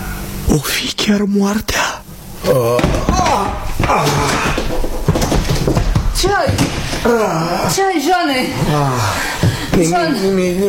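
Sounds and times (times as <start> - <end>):
speech: 0.5 - 10.6
voices crying out and groaning: 2.4 - 5.1, 7.0 - 9.4
chair knocked over by accident, crashing with heavy thud and clatter: 2.6 - 7.8.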